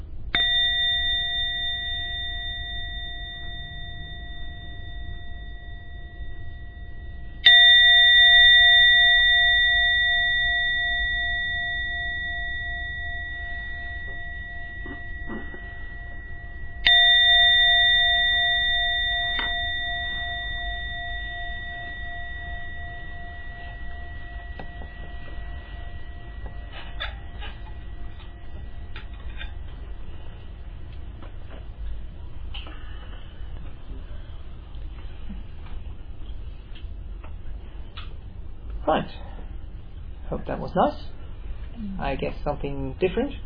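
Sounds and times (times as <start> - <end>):
meditation gong ringing: 0.0 - 33.4
speech: 38.9 - 39.2, 40.3 - 41.1, 42.0 - 43.4.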